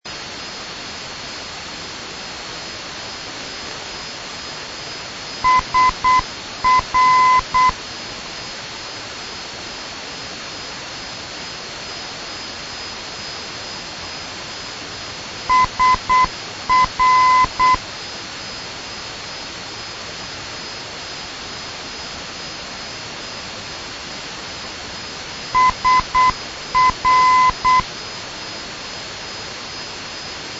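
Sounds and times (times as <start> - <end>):
NDB radio beacon signal in Tashkent Sergeli Uzbekistan: 5.4 - 7.8, 15.5 - 17.8, 25.6 - 27.9.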